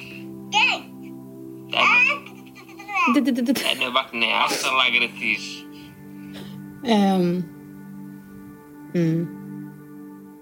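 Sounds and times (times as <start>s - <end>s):
baby babbling: 1.7s - 3.2s
speech: 3.1s - 5.6s, 6.8s - 7.6s, 9.0s - 9.4s.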